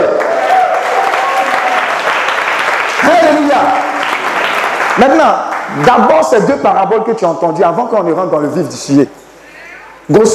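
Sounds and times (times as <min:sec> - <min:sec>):
church congregation applauding: 0:00.0 - 0:06.3
speech: 0:05.0 - 0:09.2, 0:10.1 - 0:10.3.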